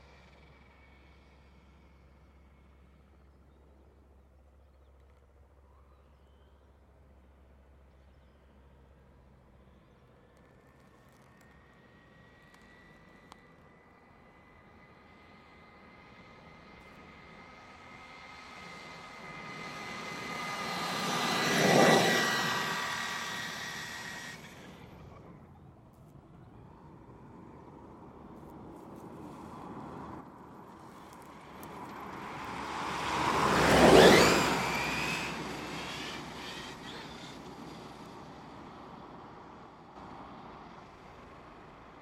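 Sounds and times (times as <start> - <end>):
RC truck tires rushing on an asphalt village road: 9.8 - 42.0
RC monster truck brushless motor whining on an asphalt village road: 18.7 - 25.4, 32.2 - 37.9.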